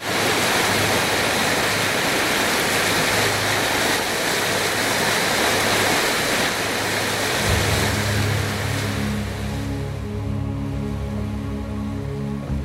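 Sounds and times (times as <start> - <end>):
flowing water of the Nile River in Egypt: 0.0 - 12.6
low droning hum: 7.4 - 12.6.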